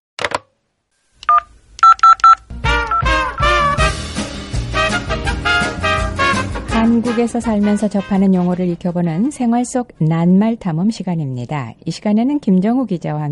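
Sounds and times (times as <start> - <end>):
beeping tones of a phone number being dialed: 1.3 - 3.2
bright music: 2.6 - 9.3
speech: 7.0 - 13.3.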